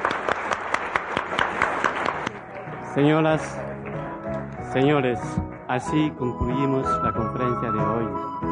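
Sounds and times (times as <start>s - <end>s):
audience applauding: 0.0s - 5.7s
speech: 3.0s - 3.7s, 4.7s - 8.4s.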